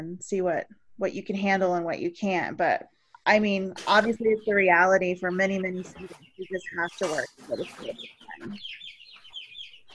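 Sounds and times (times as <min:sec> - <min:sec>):
speech: 0:00.0 - 0:09.0
chickens clucking and chattering: 0:03.4 - 0:09.9.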